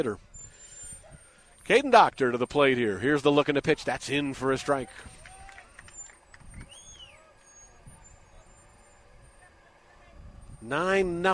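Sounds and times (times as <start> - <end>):
speech: 0.0 - 0.3, 1.7 - 5.2, 10.6 - 11.3
bus brakes squealing: 0.0 - 10.8
bus engine rumbling by during a baseball game: 0.0 - 11.3.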